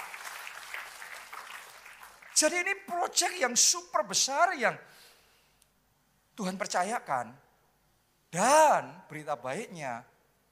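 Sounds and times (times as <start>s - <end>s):
audience applause: 0.0s - 2.5s
speech: 2.4s - 5.0s, 6.4s - 7.4s, 8.3s - 10.1s.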